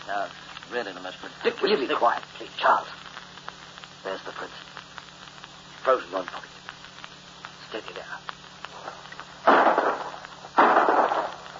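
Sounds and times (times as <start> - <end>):
speech: 0.1 - 3.0, 4.0 - 4.8, 5.8 - 6.5, 7.7 - 9.6
gunshots during a bird hunt: 9.4 - 11.5.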